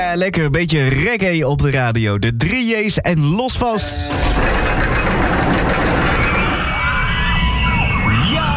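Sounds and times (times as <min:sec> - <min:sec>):
speech: 0:00.2 - 0:05.4
roller coaster rumbling and rattling along its track: 0:04.0 - 0:08.5.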